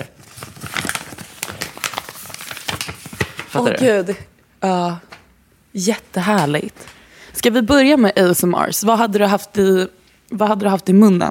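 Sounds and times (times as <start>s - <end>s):
crinkling and rustling of something papery or plastic being handled: 0.0s - 4.2s
speech: 3.6s - 5.1s, 5.8s - 11.2s.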